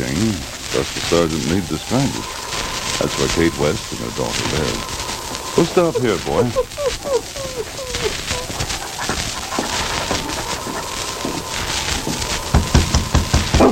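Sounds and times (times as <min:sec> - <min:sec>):
noisy background: 0:00.0 - 0:13.7
speech: 0:00.2 - 0:02.4, 0:03.0 - 0:05.0, 0:05.6 - 0:08.4
laughter: 0:00.8 - 0:13.2
dog barking and yelping: 0:06.5 - 0:12.3.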